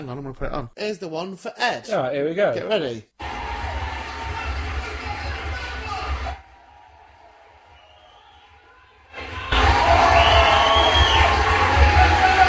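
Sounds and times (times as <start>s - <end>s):
speech: 0.0s - 3.2s
large audience cheering at end of live show: 3.2s - 12.4s.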